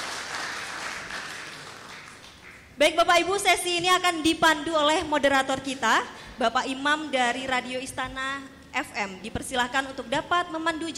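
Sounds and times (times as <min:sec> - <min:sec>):
audience applause at an event in Bojonegoro: 0:00.0 - 0:02.6
speech: 0:02.8 - 0:10.9.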